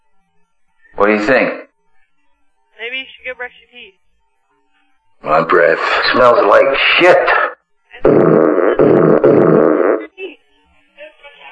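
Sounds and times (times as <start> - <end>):
speech: 1.0 - 1.6, 3.2 - 4.0, 5.2 - 10.4
long loud rumbling fart: 5.2 - 10.1.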